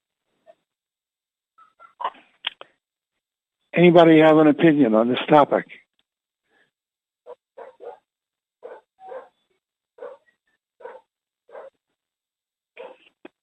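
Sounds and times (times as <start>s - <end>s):
speech: 3.8s - 5.8s
dog barking: 7.3s - 9.4s, 10.0s - 11.8s, 12.8s - 13.1s.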